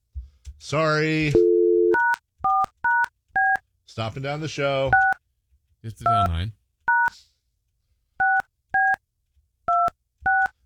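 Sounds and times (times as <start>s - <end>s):
speech: 0.6s - 1.5s, 4.0s - 5.2s, 5.8s - 7.2s
telephone keypad dialing with DTMF tones: 1.4s - 3.6s, 5.0s - 5.2s, 6.9s - 7.1s, 8.2s - 9.0s, 9.7s - 10.6s.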